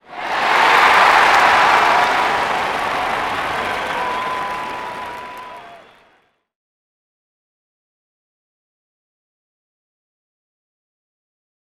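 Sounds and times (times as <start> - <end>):
people cheering on bumper cars: 0.0 - 6.3.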